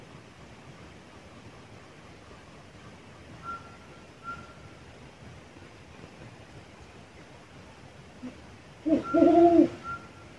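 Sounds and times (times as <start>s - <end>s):
faint thin whistled tone: 3.4s - 4.7s, 9.0s - 10.2s
brown wood owl Strix leptogrammica hooting: 8.2s - 10.0s.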